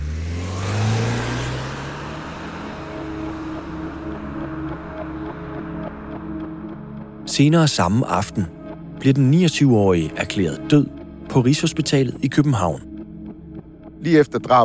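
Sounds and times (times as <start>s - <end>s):
car engine revving hard as car speeds off: 0.0s - 7.2s
speech: 7.3s - 12.9s, 14.0s - 14.6s.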